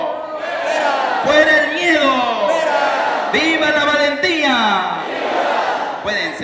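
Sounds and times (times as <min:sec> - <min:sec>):
large crowd shouting and cheering: 0:00.1 - 0:03.5, 0:04.8 - 0:06.1.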